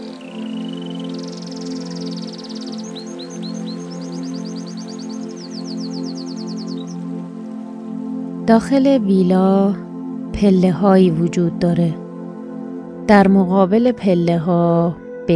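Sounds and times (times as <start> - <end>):
small birds chirping and trilling: 0.0 - 7.9
stream water flowing in a steady rush: 0.0 - 8.7
speech: 8.5 - 9.8, 10.4 - 12.0, 13.1 - 15.0.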